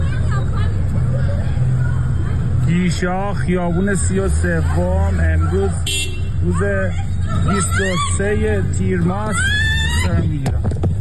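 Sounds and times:
constant low street rumble: 0:00.0 - 0:11.0
speech: 0:02.8 - 0:10.7
woman screaming during a street struggle: 0:09.2 - 0:10.2.

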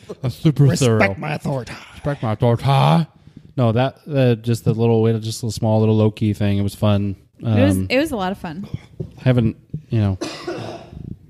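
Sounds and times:
speech: 0:00.1 - 0:10.5
person coughing: 0:10.2 - 0:11.2.

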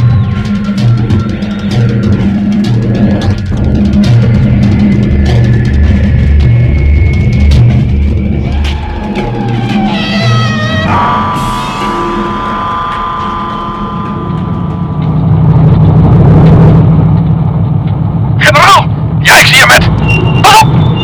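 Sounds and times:
truck engine running with high mechanical whine: 0:00.0 - 0:09.9, 0:10.8 - 0:21.0.

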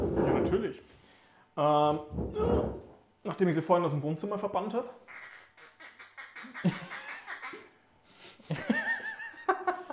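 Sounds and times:
speech: 0:00.4 - 0:01.0, 0:01.6 - 0:05.3, 0:06.6 - 0:07.0, 0:08.5 - 0:08.8
toy duck squeaky quacking: 0:05.1 - 0:07.6
laughter: 0:08.4 - 0:09.9.

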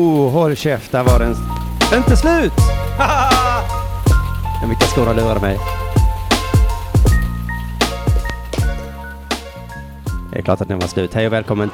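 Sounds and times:
speech: 0:00.0 - 0:03.4, 0:04.6 - 0:05.8, 0:10.3 - 0:11.7
punchy booming drum hits: 0:01.1 - 0:09.5
band playing a song: 0:01.1 - 0:09.6
laughter: 0:02.9 - 0:03.7.

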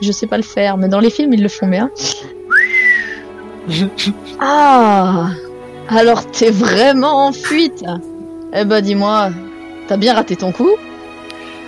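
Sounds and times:
speech: 0:00.0 - 0:02.4, 0:03.7 - 0:10.9
mouth whistle rising in pitch: 0:02.5 - 0:03.4.

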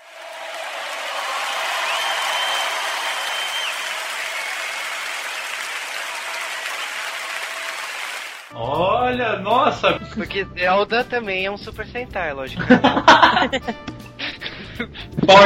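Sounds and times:
crowd applauding: 0:00.0 - 0:08.6
speech: 0:08.5 - 0:13.9, 0:15.2 - 0:15.4
laughter: 0:12.6 - 0:15.2.

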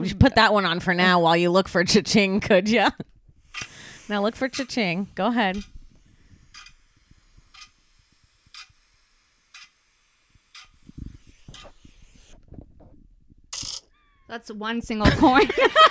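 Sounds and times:
speech: 0:00.0 - 0:05.7, 0:14.3 - 0:15.9
clock ticking: 0:03.5 - 0:05.8, 0:06.5 - 0:06.8, 0:07.5 - 0:07.8, 0:08.5 - 0:08.9, 0:09.5 - 0:09.8, 0:10.5 - 0:10.8
laughter: 0:15.0 - 0:15.9.

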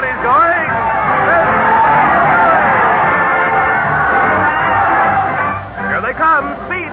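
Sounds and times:
large crowd roaring and cheering: 0:00.0 - 0:06.9.

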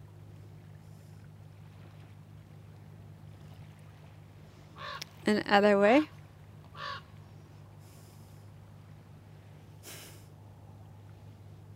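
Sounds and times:
steady low hum: 0:00.0 - 0:11.7
raven cawing: 0:04.8 - 0:05.1, 0:06.7 - 0:07.1
speech: 0:05.3 - 0:06.2
soft breathy bursts: 0:07.3 - 0:10.4.

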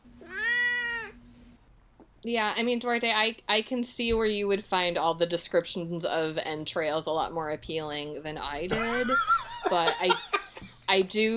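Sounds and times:
faint steady hum: 0:00.0 - 0:11.3
cat meowing: 0:00.2 - 0:01.2
speech: 0:02.2 - 0:10.2, 0:10.9 - 0:11.3
laughter: 0:08.7 - 0:10.8.

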